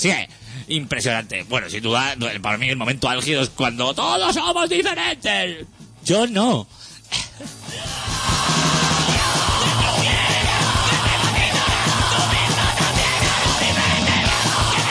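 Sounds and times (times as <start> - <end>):
speech: 0.0 - 7.6
crowd yelling and shouting in a bar in Recoleta: 7.7 - 14.8.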